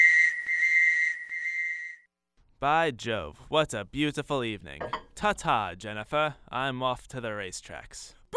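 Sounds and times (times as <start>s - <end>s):
whistle blowing: 0.0s - 2.1s
speech: 2.6s - 8.2s.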